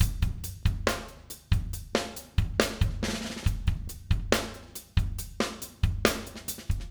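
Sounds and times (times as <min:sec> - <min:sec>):
busy pop rock drums at slow tempo: 0:00.0 - 0:06.8.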